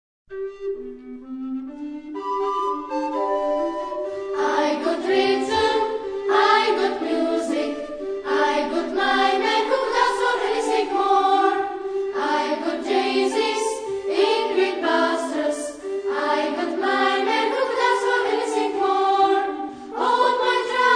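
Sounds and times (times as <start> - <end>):
flute ensemble playing: 0.3 - 20.9
chamber choir singing: 4.3 - 20.9.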